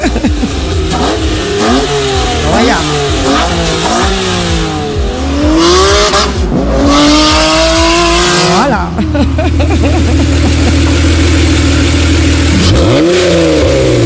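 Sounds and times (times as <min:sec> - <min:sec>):
laughter: 0:00.0 - 0:00.8, 0:08.7 - 0:11.2
vintage car engine revving: 0:00.0 - 0:14.0.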